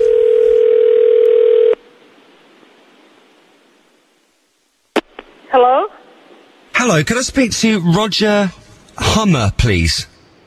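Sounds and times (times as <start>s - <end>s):
ringback tone of an outgoing phone call to the United States: 0.0s - 1.8s
faint phone line hiss: 0.0s - 10.4s
speech: 6.9s - 10.1s.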